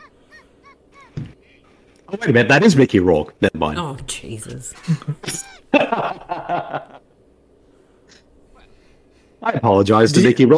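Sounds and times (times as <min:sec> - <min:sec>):
bird cawing: 0:00.0 - 0:02.0
speech: 0:02.1 - 0:07.0, 0:09.4 - 0:10.5
laughter: 0:04.8 - 0:07.0.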